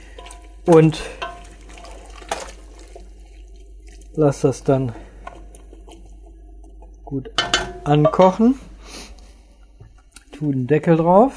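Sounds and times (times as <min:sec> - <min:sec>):
tap water running into a pot for chicken broth: 0:00.0 - 0:08.8
speech: 0:00.7 - 0:01.2, 0:04.2 - 0:05.0, 0:07.1 - 0:08.7, 0:10.4 - 0:11.3.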